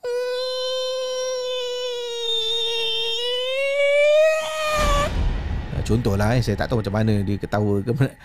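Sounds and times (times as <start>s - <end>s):
person imitating a possessed woman crying out: 0.0s - 5.1s
speech: 5.9s - 8.2s.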